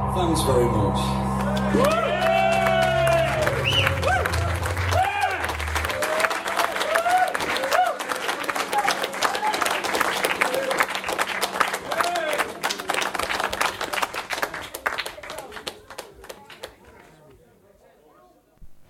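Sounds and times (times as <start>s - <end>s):
speech: 0.2s - 2.1s
crowd clapping outside a studio window: 1.3s - 17.3s
crowd cheers and whoops outside a studio window: 1.5s - 9.8s.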